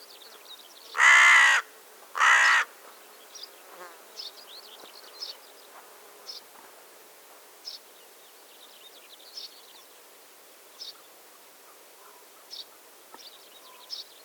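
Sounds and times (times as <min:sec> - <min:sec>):
Carrion crow Corvus corone giving harsh drawn-out caws: 0:01.0 - 0:02.7.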